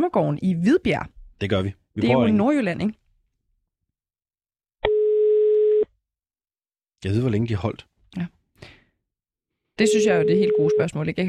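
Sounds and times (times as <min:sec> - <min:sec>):
speech: 0:00.0 - 0:03.0, 0:07.0 - 0:08.8, 0:09.8 - 0:11.2
telephone ringing tone of a call placed to a hotel in Denmark: 0:04.8 - 0:05.9, 0:09.8 - 0:11.0.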